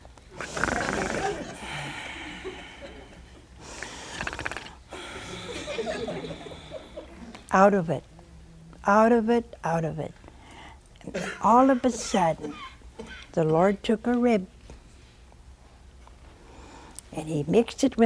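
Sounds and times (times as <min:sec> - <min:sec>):
man's voice imitating the snoring of a sleeping man: 0:00.4 - 0:01.5, 0:04.0 - 0:05.5
laughter: 0:01.0 - 0:03.5, 0:05.0 - 0:07.4
speech: 0:07.6 - 0:08.1, 0:08.8 - 0:10.2, 0:11.1 - 0:12.7, 0:13.3 - 0:14.6, 0:17.3 - 0:18.0.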